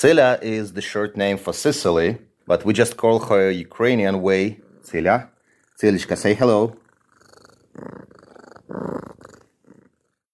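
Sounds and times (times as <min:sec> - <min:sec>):
speech: 0:00.0 - 0:06.8
female pet cat purring at an animal shelter: 0:02.7 - 0:10.3.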